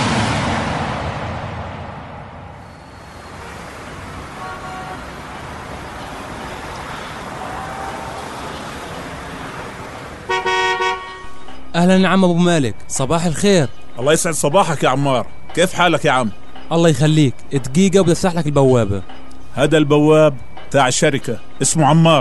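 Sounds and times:
rushing vehicle and road noise: 0:00.0 - 0:22.1
car horn toot: 0:02.8 - 0:09.4, 0:10.2 - 0:11.4
speech: 0:11.8 - 0:22.1.

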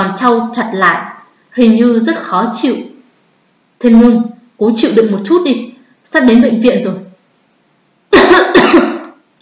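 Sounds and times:
speech: 0:00.1 - 0:02.9, 0:03.8 - 0:07.0, 0:08.1 - 0:08.9
woman's dry coughing in a car's passenger seat: 0:08.1 - 0:09.2.

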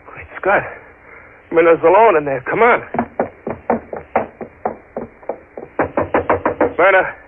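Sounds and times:
speech: 0:00.4 - 0:00.8, 0:01.5 - 0:03.0, 0:06.8 - 0:07.2
rapid knocking on a bolted wooden room door: 0:02.9 - 0:06.8.

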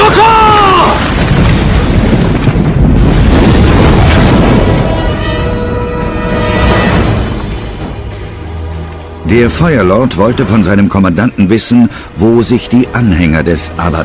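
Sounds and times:
ship exploding: 0:00.0 - 0:08.4
speech: 0:09.4 - 0:14.0.

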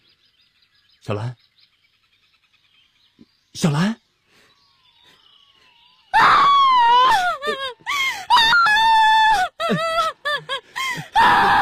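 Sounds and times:
speech: 0:01.0 - 0:01.4, 0:03.6 - 0:04.0
person crying loudly with wavering wails and sobbing gasps: 0:06.2 - 0:11.6.

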